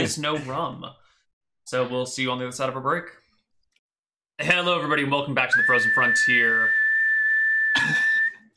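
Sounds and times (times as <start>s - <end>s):
speech: 0.0s - 1.0s, 1.7s - 3.2s, 4.4s - 6.8s, 7.8s - 8.1s
man blowing a whistle: 5.5s - 8.5s.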